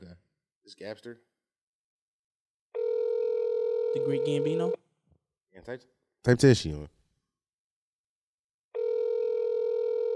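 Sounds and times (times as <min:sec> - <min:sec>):
speech: 0:00.7 - 0:01.3, 0:03.9 - 0:04.8, 0:05.6 - 0:07.0
electronic ringback tone of an outgoing phone call over a speakerphone: 0:02.8 - 0:04.8, 0:08.8 - 0:10.1.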